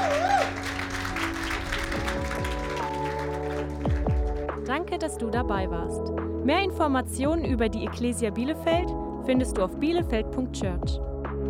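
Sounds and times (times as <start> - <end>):
audience applauding: 0.0 - 4.6
speech: 4.8 - 11.1.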